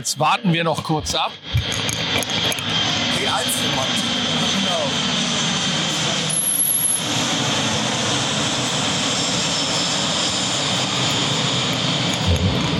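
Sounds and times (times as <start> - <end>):
speech: 0.0 - 5.0
Airbus A319 jet airliner on landing approach: 0.5 - 12.7.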